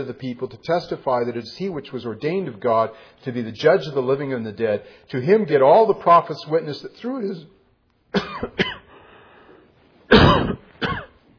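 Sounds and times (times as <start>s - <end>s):
speech: 0.0s - 8.8s
throat clearing coughs: 8.1s - 8.9s, 10.1s - 11.2s.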